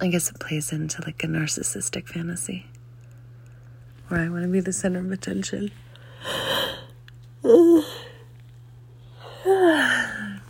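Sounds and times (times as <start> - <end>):
speech: 0.0 - 2.8, 4.1 - 6.6, 7.4 - 8.1, 9.4 - 10.3
steady low hum: 0.0 - 10.4
person yawning: 6.2 - 8.2, 9.2 - 10.4.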